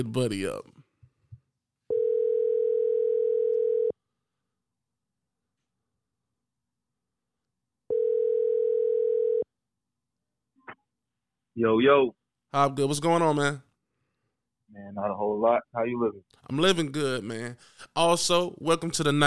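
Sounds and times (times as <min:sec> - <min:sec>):
speech: 0:00.0 - 0:00.7, 0:11.6 - 0:13.7, 0:14.7 - 0:19.2
electronic ring tones through a handset: 0:01.9 - 0:04.0, 0:07.9 - 0:09.5.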